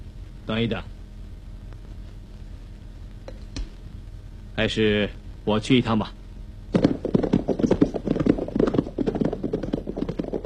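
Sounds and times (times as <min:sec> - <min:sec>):
speech: 0:00.5 - 0:01.0, 0:04.6 - 0:06.9
horse hooves clip-clopping as riders travel on horseback: 0:06.8 - 0:10.4.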